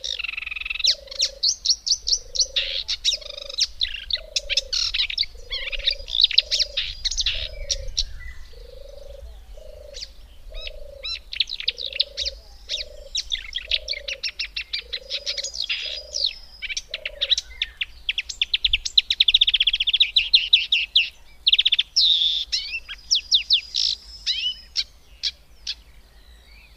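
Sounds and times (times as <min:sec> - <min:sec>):
frog croaking low notes: 0:00.0 - 0:17.5
marsh warbler song: 0:00.0 - 0:26.7.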